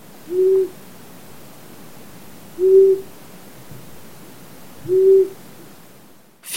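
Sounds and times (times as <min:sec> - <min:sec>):
long-eared owl hooting: 0:00.3 - 0:00.8, 0:02.6 - 0:03.1, 0:04.9 - 0:05.4.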